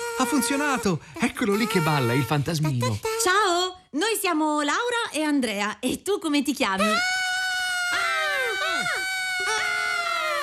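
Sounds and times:
speech: 0.2 - 7.2
several people screaming high-pitched: 7.0 - 10.4.

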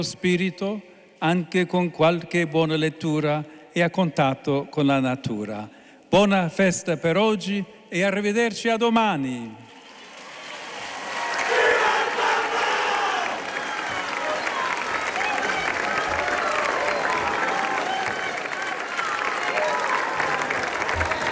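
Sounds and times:
speech: 0.0 - 9.6
dense applause from a large outdoor crowd: 9.6 - 21.2
large outdoor crowd shouting and cheering in a square: 9.6 - 21.2.

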